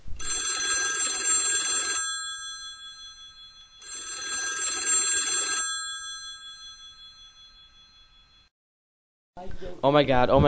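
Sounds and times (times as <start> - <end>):
old-style telephone bell ringing: 0.2 - 8.5
speech: 9.4 - 10.4.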